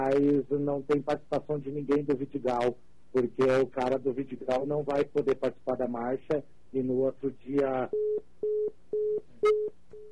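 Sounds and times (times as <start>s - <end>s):
speech: 0.1s - 10.1s
phone busy tone after a dropped call: 7.9s - 10.1s.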